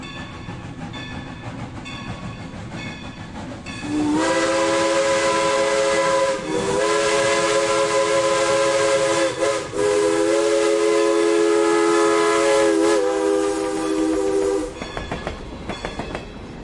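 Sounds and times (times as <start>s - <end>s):
steam locomotive rhythmic chuffing: 0.0s - 16.2s
steam train running rumble: 0.0s - 16.6s
steam locomotive whistle: 3.8s - 14.8s.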